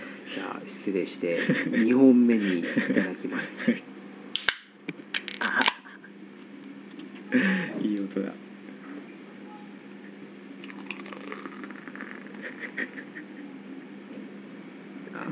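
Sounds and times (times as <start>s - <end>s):
low hum: 0.0s - 15.3s
speech: 0.4s - 4.0s
laughter: 1.2s - 3.8s, 5.4s - 6.1s, 12.0s - 14.3s
drink being poured: 10.6s - 12.4s.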